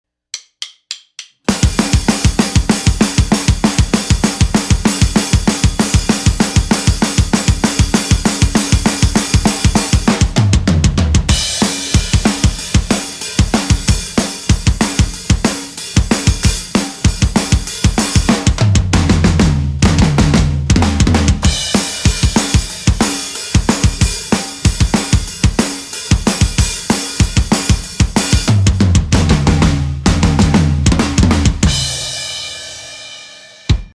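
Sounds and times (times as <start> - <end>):
studio drums playing: 0.4 - 33.9.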